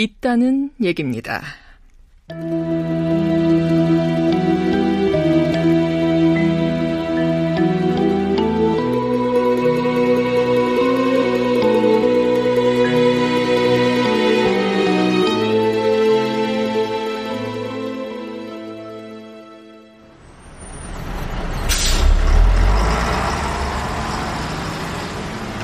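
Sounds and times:
speech: 0.0 - 1.6
soft music: 2.2 - 20.1
rumble of a bus pulling in at a bus stop: 20.0 - 25.6
bus brake squeal: 20.1 - 25.6
bus air-brake hiss: 21.6 - 22.3.

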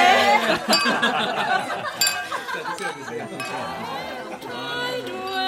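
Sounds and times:
people laughing: 0.0 - 5.2
lively crowd chatter: 0.0 - 5.3
several glasses clinking together in a toast: 0.6 - 4.1.

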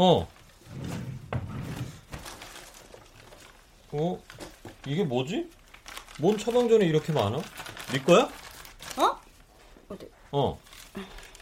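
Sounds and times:
speech: 0.0 - 0.3, 3.9 - 5.6, 6.2 - 8.4, 9.9 - 11.2
rummaging through a wooden drawer: 0.6 - 3.5.

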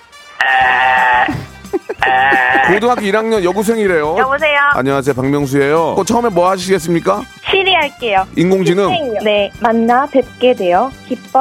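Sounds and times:
speech: 0.4 - 0.8, 2.0 - 11.3
voice imitating a coffee machine with buzzing drone and gurgles: 0.4 - 3.1
laughter: 0.5 - 4.2.

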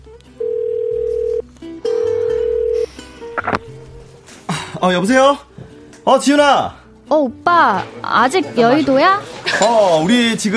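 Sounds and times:
ringback tone of an outgoing phone call from an office: 0.4 - 3.6
speech: 4.8 - 10.5.

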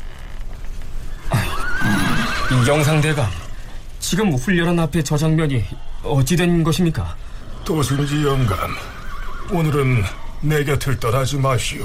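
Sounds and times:
horse whinnying at a military training ground: 1.1 - 3.6, 7.4 - 10.8
speech: 2.5 - 3.4, 4.1 - 11.8.

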